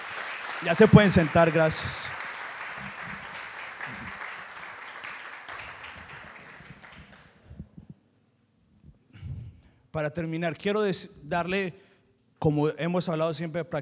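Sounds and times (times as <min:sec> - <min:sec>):
congregation applauding: 0:00.0 - 0:07.7
speech: 0:00.6 - 0:02.2, 0:10.0 - 0:13.8.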